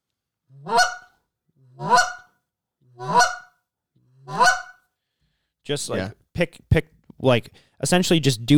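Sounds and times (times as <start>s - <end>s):
speech: 0.6s - 0.9s, 5.7s - 8.5s
goose clucks blown on a goose hunting call: 0.6s - 1.1s, 1.8s - 2.3s, 3.0s - 3.5s, 4.3s - 4.8s.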